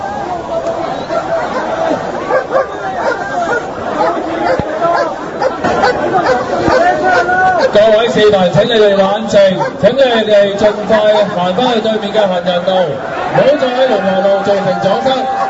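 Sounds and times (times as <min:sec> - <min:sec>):
dense agitated crowd chattering and shouting: 0:00.0 - 0:15.4
dog barking: 0:02.3 - 0:07.8, 0:09.6 - 0:09.9
speech: 0:07.7 - 0:15.4.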